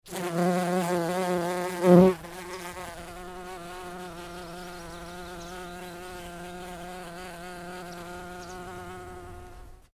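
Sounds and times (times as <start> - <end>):
bumblebee buzzing: 0.0 - 9.9
birds tweeting in background: 2.4 - 9.8.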